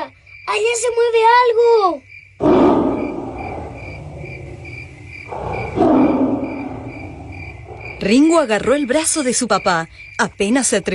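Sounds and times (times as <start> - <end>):
crickets chirping: 0.0 - 10.9
speech: 0.5 - 2.6, 8.0 - 10.9
tiger roaring while pouncing on a dead ox: 2.4 - 8.4.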